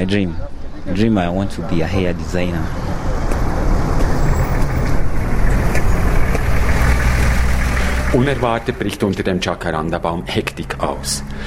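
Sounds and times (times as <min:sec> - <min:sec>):
speech: 0:00.0 - 0:02.9, 0:08.1 - 0:11.4
road noise: 0:00.0 - 0:11.4
electricity works car engine rumbling near a crossroads: 0:02.4 - 0:11.4.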